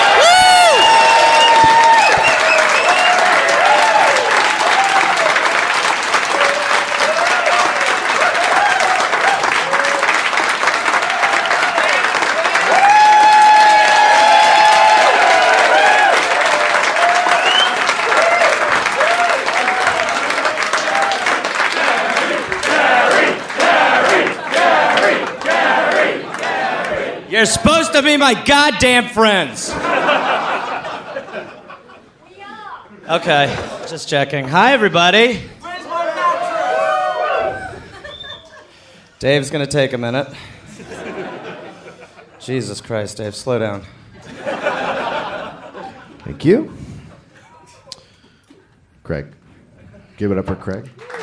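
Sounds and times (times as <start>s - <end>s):
live audience cheering and whoops: 0.0s - 22.8s, 35.6s - 38.4s
live audience applause: 0.0s - 27.1s, 51.0s - 51.2s
speech: 27.4s - 29.9s, 33.1s - 35.5s, 39.2s - 40.5s, 42.4s - 44.0s, 46.3s - 46.8s, 49.1s - 49.4s, 50.2s - 51.0s
laughter: 29.6s - 32.3s, 37.5s - 38.9s, 40.6s - 42.5s, 44.2s - 48.0s.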